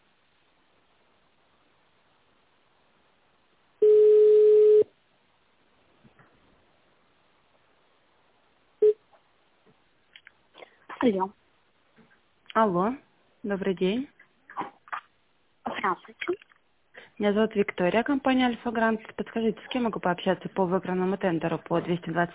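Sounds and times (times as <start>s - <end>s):
ringback tone of an outgoing telephone call: 3.8s - 4.9s
speech: 11.1s - 11.4s, 12.6s - 14.1s, 15.9s - 16.5s, 17.2s - 22.3s.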